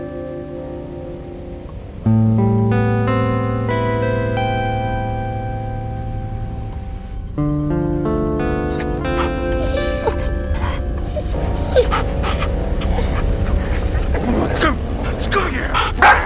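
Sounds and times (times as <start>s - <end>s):
steady rumble: 0.0s - 16.2s
dog whining and whimpering: 8.7s - 15.2s
dog barking: 8.7s - 16.2s
faint voices: 8.7s - 16.2s.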